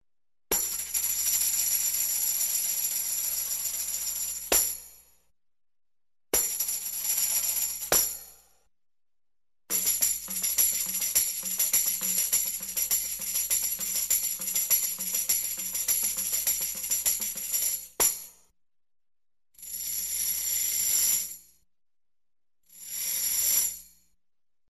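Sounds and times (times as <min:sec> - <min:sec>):
tambourine: 0:00.5 - 0:05.3, 0:06.4 - 0:08.6, 0:09.7 - 0:18.5, 0:19.6 - 0:21.6, 0:22.7 - 0:24.2.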